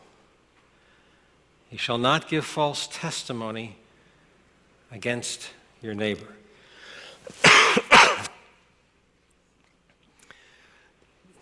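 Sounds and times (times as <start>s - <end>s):
faint breath: 0.6s - 1.5s, 6.5s - 7.3s, 10.2s - 11.0s
speech: 1.7s - 3.8s, 4.9s - 6.4s, 7.2s - 7.8s
person coughing: 7.4s - 8.4s.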